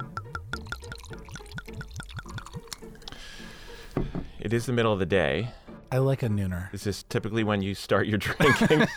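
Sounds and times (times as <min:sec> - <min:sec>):
ginger ale poured into a glass: 0:00.0 - 0:03.3
speech: 0:04.0 - 0:08.9
laughter: 0:08.2 - 0:08.9.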